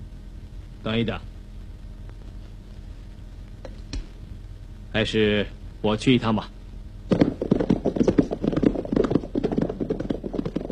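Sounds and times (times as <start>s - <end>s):
speech: 0.8s - 1.3s, 4.9s - 7.2s
horses' hooves clip-clopping as military officers on horseback gallop: 7.1s - 10.7s.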